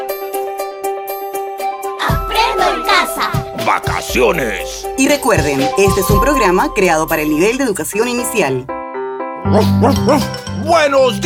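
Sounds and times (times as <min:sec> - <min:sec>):
steady sustained musical backdrop: 0:00.0 - 0:11.2
speech: 0:03.2 - 0:08.8, 0:09.4 - 0:11.2
short dog barks: 0:09.5 - 0:10.4.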